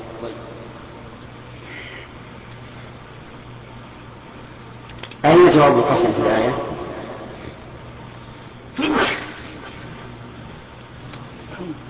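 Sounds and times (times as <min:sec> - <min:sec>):
steady hum: 0:00.0 - 0:11.8
speech: 0:00.2 - 0:00.6, 0:05.2 - 0:06.7
sharp loud sneeze: 0:08.8 - 0:09.8.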